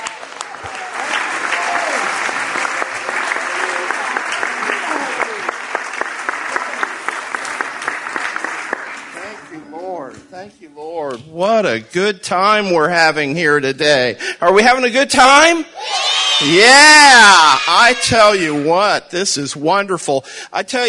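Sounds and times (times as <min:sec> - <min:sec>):
room full of people clapping: 0:00.0 - 0:09.6
speech: 0:11.4 - 0:20.8.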